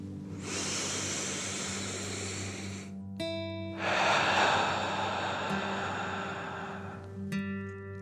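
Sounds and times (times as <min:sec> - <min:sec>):
soft steady tonal hum: 0:00.0 - 0:03.2, 0:03.8 - 0:07.6
deep breath in through nose and out mouth: 0:00.3 - 0:03.0, 0:03.8 - 0:07.4.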